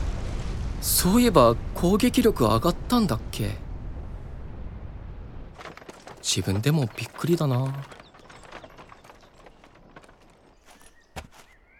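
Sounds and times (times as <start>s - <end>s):
speech: 0.9s - 3.6s, 6.3s - 8.0s
horse-drawn carriage hooves clip-clopping at walking pace: 5.6s - 11.6s.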